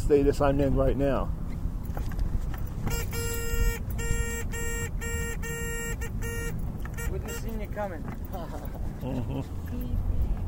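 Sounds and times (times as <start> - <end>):
steady low engine rumble: 0.0 - 10.4
speech: 0.1 - 1.4, 7.7 - 10.2
car horn honking in short bursts: 2.8 - 8.1.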